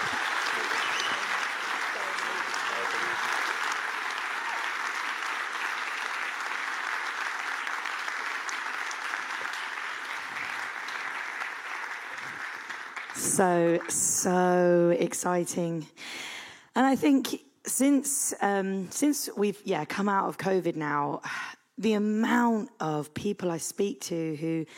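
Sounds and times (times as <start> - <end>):
sustained applause from a large audience: 0.0 - 14.0
speech: 13.2 - 16.1, 16.8 - 24.7.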